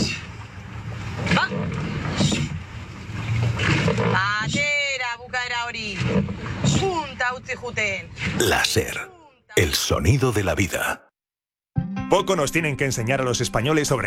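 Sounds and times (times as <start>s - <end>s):
water noise from rowing boats: 0.0s - 10.5s
speech: 7.6s - 11.0s, 12.1s - 14.0s.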